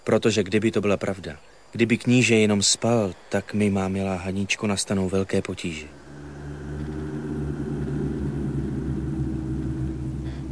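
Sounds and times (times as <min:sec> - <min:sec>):
speech: 0:00.0 - 0:06.0
distant thunder rumbling in the mountains: 0:05.7 - 0:10.5.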